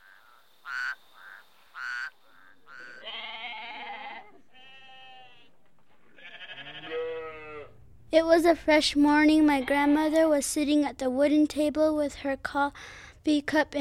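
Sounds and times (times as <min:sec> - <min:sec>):
sheep bleating: 0:02.7 - 0:07.8
speech: 0:08.1 - 0:13.7.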